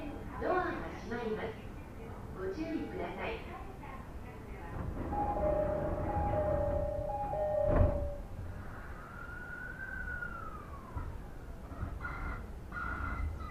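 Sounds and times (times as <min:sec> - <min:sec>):
people talking inside a rapid train: 0:00.0 - 0:06.7
low rumble inside a rapid train: 0:00.0 - 0:13.4
steady tones: 0:05.0 - 0:08.4.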